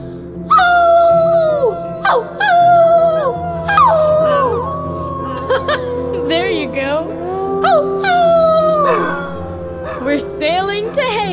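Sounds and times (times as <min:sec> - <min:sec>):
dog howling: 0:00.5 - 0:11.3
speech: 0:02.1 - 0:02.4
dog yelping: 0:03.8 - 0:11.3.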